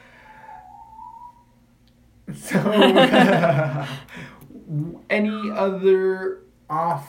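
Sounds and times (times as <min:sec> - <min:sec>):
low hum: 0:00.0 - 0:07.0
dramatic long steady high-pitched whistle: 0:00.2 - 0:01.6
speech: 0:02.3 - 0:07.0
laughter: 0:02.4 - 0:04.2.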